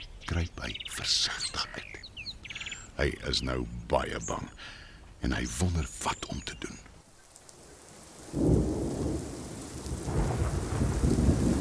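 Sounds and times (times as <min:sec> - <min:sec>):
speech: 0:00.3 - 0:02.1, 0:03.0 - 0:06.9, 0:08.3 - 0:09.0
steady hard rain pouring: 0:07.3 - 0:11.5
loud thunder crack rumbling: 0:08.2 - 0:11.5.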